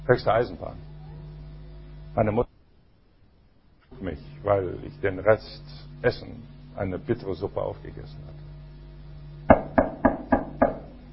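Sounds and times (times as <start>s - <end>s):
speech: 0.1s - 0.9s, 2.2s - 2.5s, 4.0s - 8.4s
sharp hollow knocking on a door: 9.5s - 10.9s.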